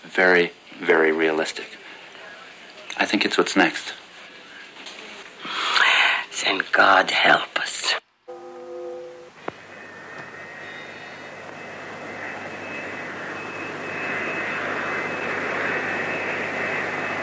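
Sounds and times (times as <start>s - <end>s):
speech: 0.0s - 1.8s, 3.0s - 4.0s, 6.4s - 8.0s
brief tonal note: 8.3s - 9.5s
jet airplane roaring with a high whine: 8.3s - 17.2s.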